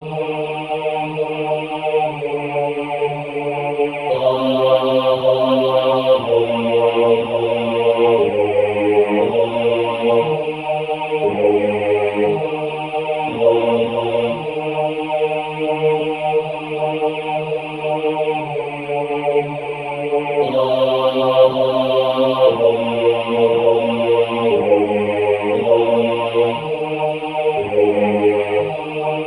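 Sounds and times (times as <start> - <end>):
SATB choir singing: 0.0 - 29.2.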